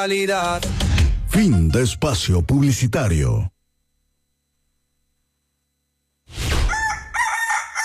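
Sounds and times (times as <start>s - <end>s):
speech: 0.0s - 0.8s, 1.4s - 3.5s
rooster crowing: 6.6s - 7.8s.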